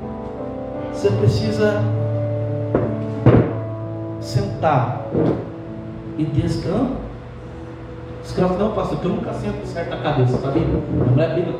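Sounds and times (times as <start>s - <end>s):
steady low electrical hum: 0.0s - 11.5s
speech: 1.0s - 2.0s, 2.7s - 3.5s, 4.2s - 5.5s, 6.2s - 7.0s, 8.2s - 11.5s
dull wooden thumps: 2.7s - 3.6s.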